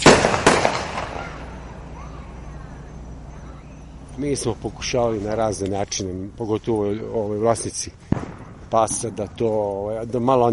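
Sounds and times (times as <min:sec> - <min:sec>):
firecracker bangs: 0:00.0 - 0:01.5, 0:08.1 - 0:09.4
speech: 0:04.2 - 0:08.1, 0:08.7 - 0:10.5.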